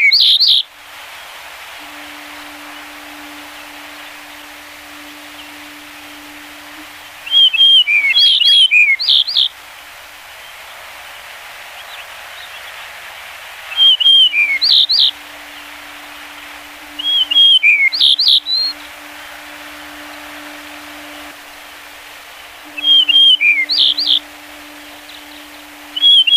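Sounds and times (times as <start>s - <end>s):
light hiss: 0.0s - 26.3s
low hum: 1.8s - 8.2s, 14.2s - 26.3s
yellow-breasted bunting singing whistled and slurred notes: 1.8s - 9.5s, 13.7s - 26.3s.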